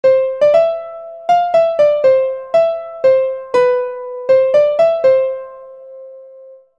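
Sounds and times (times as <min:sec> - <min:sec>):
melody: 0:00.0 - 0:06.7.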